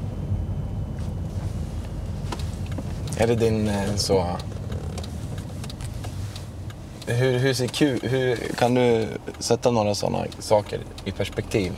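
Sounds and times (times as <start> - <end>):
car engine rumble from inside a moving car: 0.0 - 11.7
road noise from inside a moving car: 0.0 - 11.7
faint clicks and rattles: 2.3 - 11.7
speech: 3.2 - 4.6, 7.1 - 11.7.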